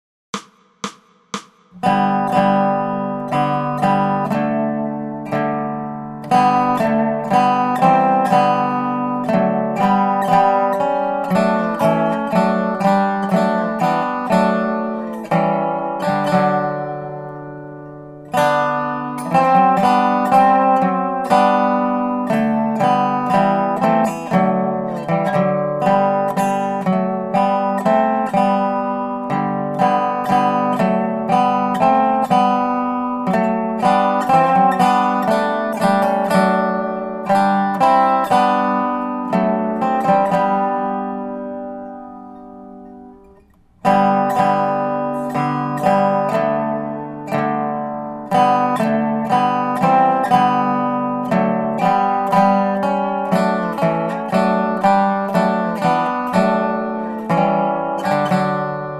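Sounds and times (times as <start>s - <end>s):
dobro playing a Christmas carol: 1.8s - 58.9s.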